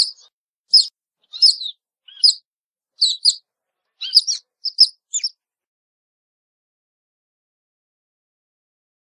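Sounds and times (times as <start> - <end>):
otter giving sharp high-pitched chirps: 0.0 - 2.4, 3.0 - 3.4, 4.0 - 5.4.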